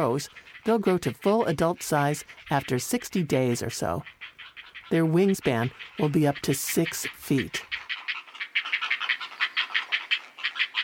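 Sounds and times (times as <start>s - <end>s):
speech: 0.0s - 4.2s, 4.9s - 7.8s
heron nestlings calling with raspy clicking notes in the nest: 0.0s - 10.8s.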